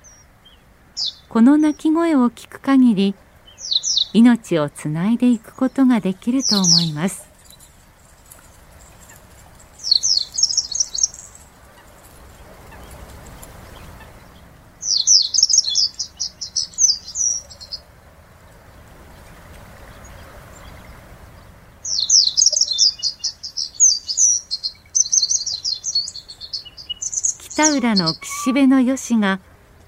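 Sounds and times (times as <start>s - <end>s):
Japanese wagtail singing in spring: 0.0s - 2.0s, 3.4s - 4.3s, 5.3s - 7.7s, 9.8s - 11.9s, 13.7s - 17.9s, 21.8s - 29.4s
low outdoor rumble: 0.0s - 29.8s
speech: 1.3s - 3.2s, 4.1s - 7.3s, 27.7s - 29.5s.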